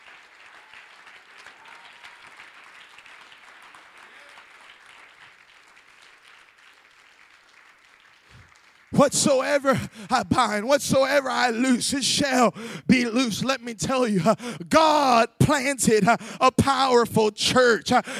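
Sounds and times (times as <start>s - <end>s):
audience crowd clapping hands: 0.0s - 10.4s
speech: 8.9s - 18.1s.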